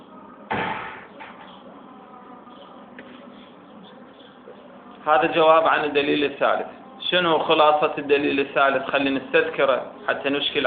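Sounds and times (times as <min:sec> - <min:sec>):
quiet hum: 0:00.0 - 0:10.6
door thudding shut: 0:00.5 - 0:01.5
speech: 0:05.0 - 0:10.6.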